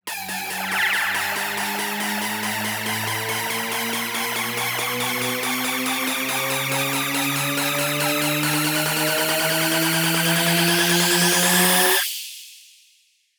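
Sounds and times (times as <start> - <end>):
tension uplifter riser in F sharp: 0.1 - 12.0.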